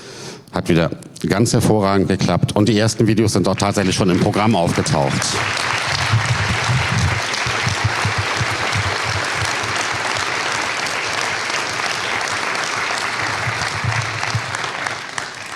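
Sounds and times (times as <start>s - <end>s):
speech: 0.6s - 5.8s
large audience applause: 3.6s - 15.5s.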